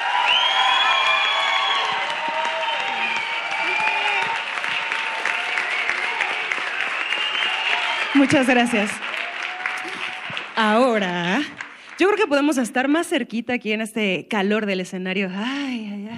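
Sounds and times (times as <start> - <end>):
audience cheering and whooping: 0.0 - 10.6
live audience applause: 0.0 - 12.5
speech: 8.2 - 9.1, 10.6 - 16.1.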